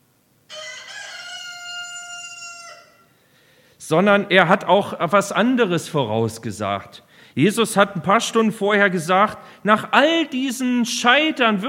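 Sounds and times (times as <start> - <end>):
rooster crowing: 0.5 - 3.1
speech: 3.9 - 11.6.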